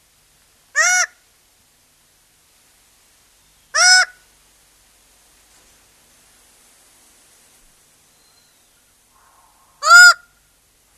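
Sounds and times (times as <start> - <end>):
Raggiana bird-of-paradise giving a harsh nasal honking call: 9.1 - 10.4.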